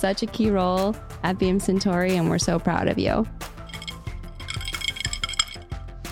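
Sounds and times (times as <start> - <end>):
speech: 0.0 - 3.4
several glasses clinking together in a toast: 3.7 - 5.6.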